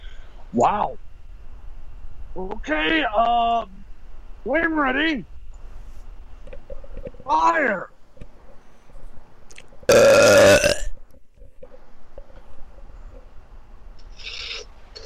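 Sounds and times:
speech: 0.5s - 1.0s, 2.4s - 3.8s, 4.4s - 5.3s, 7.3s - 7.9s
loud belch with a deep rattling tone: 9.9s - 11.0s.

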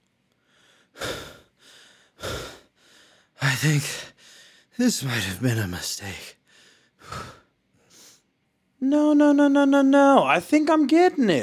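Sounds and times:
deep inhales and exhales during a counted breathing exercise: 0.4s - 4.8s, 6.4s - 8.2s
speech: 3.6s - 4.2s, 4.8s - 6.4s, 8.9s - 11.4s.

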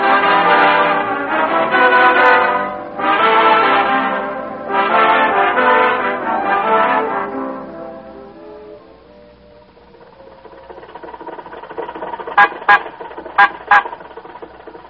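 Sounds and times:
car horn honking at a red light: 0.0s - 7.4s, 12.2s - 14.1s.

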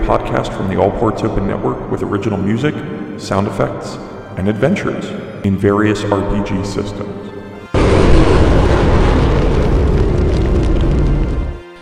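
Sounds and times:
speech: 0.1s - 7.3s
explosion of a destroyed TIE fighter in a space battle: 7.8s - 11.6s.

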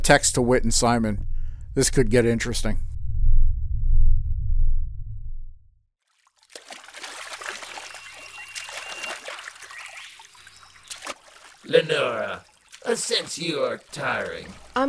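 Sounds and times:
speech: 0.0s - 2.9s, 11.7s - 14.8s
deep low rumble: 0.0s - 5.9s
paddling through water: 6.0s - 14.8s.

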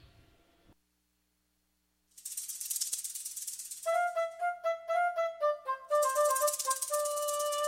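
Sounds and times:
hissing shaker: 2.1s - 4.6s, 5.9s - 7.6s.

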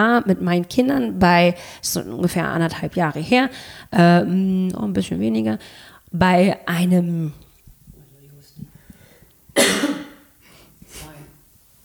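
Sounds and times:
speech: 0.0s - 7.4s
person coughing harshly: 9.6s - 10.3s.

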